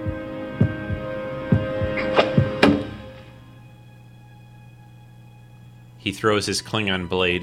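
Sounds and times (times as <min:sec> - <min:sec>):
deep heavy heartbeat thumps: 0:00.0 - 0:03.1
steady low electronic hum: 0:00.0 - 0:06.1
speech: 0:06.0 - 0:07.4.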